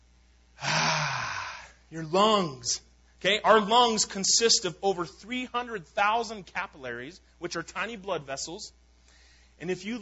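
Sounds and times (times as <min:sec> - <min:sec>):
person taking a deep breath: 0:00.6 - 0:01.8, 0:09.0 - 0:09.6
speech: 0:01.9 - 0:08.8, 0:09.6 - 0:09.9.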